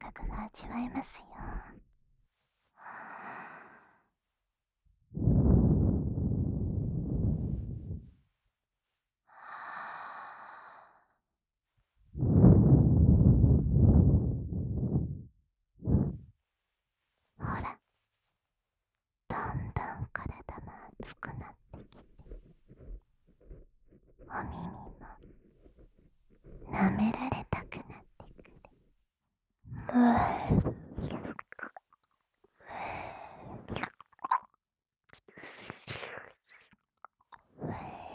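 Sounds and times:
speech: 0:00.6 - 0:01.3
breath blown very into the ear: 0:05.2 - 0:08.0, 0:12.2 - 0:15.3, 0:15.8 - 0:16.3
moist mouth clicks: 0:20.2 - 0:28.8, 0:29.8 - 0:32.2, 0:33.6 - 0:37.6.

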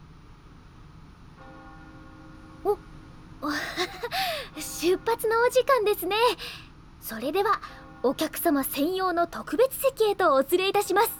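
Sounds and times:
noise: 0:00.0 - 0:11.1
church bell ringing across a canal: 0:01.4 - 0:03.4, 0:04.5 - 0:06.4, 0:07.1 - 0:11.1
speech: 0:04.8 - 0:11.1.

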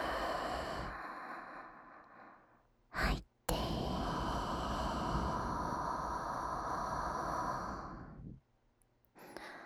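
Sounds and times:
person inhaling deeply during a relaxation exercise: 0:00.0 - 0:02.4, 0:03.6 - 0:08.4.

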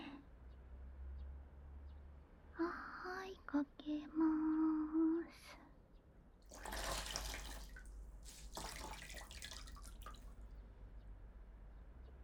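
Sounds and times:
soft voice speaking: 0:00.0 - 0:00.3, 0:02.6 - 0:05.6
hot water poured during a washing session, faint splashing: 0:06.5 - 0:10.6.

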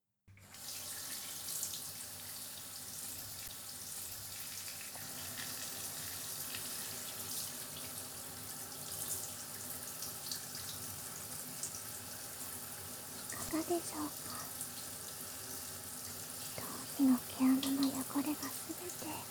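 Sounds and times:
shower water rinsing hair and scalp with warm water: 0:00.4 - 0:19.2
speech: 0:13.6 - 0:14.3, 0:18.2 - 0:19.2.

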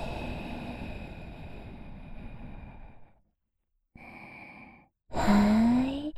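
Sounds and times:
guided breathing in and out: 0:00.0 - 0:03.2, 0:04.0 - 0:06.1.

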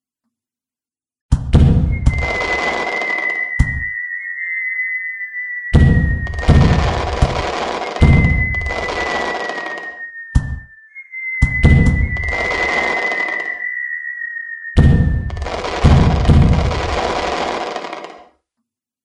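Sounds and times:
rumbling firework booms: 0:01.6 - 0:02.6, 0:05.7 - 0:09.3, 0:11.4 - 0:13.1, 0:14.8 - 0:17.5
fireworks launching with whistling falling tones: 0:01.6 - 0:18.3
loud crackling firework bursts: 0:01.9 - 0:18.3.

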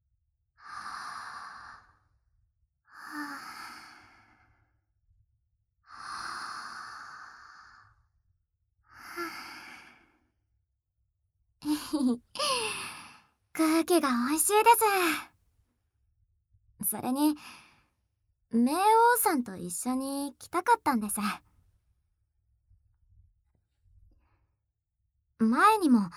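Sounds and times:
deep slow breathing during a break near a spring: 0:00.6 - 0:02.2, 0:02.9 - 0:04.8, 0:05.9 - 0:08.1, 0:08.9 - 0:10.4
speech: 0:11.8 - 0:12.3, 0:13.6 - 0:15.3, 0:16.9 - 0:17.6, 0:18.5 - 0:21.5, 0:25.4 - 0:26.1.

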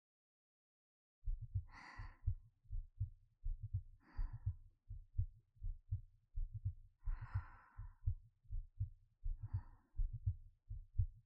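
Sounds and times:
human heartbeat heard with the ear against the chest: 0:01.2 - 0:11.2
slow soft breaths: 0:01.5 - 0:02.4, 0:04.0 - 0:04.6, 0:07.0 - 0:08.2, 0:09.3 - 0:10.4.

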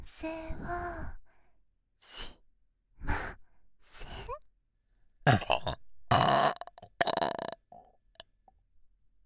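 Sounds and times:
speech: 0:00.2 - 0:01.2
person burping: 0:05.3 - 0:07.8.

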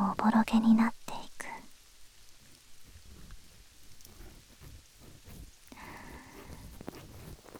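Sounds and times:
speech: 0:00.2 - 0:01.0
rain falling: 0:06.8 - 0:07.5.

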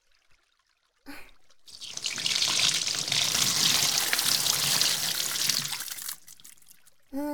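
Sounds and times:
water running from a tap or shower rinsing hair: 0:01.6 - 0:07.1.

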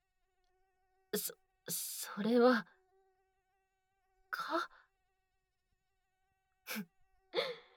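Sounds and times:
single mosquito buzzing: 0:00.2 - 0:07.7
speech: 0:01.2 - 0:02.8, 0:04.3 - 0:04.8, 0:06.7 - 0:07.5
woman gasping: 0:07.4 - 0:07.6.

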